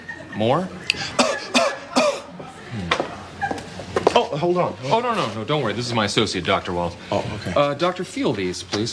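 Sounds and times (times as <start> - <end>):
speech: 0.4 - 1.3, 4.2 - 8.9
sharp coughs: 0.9 - 2.4.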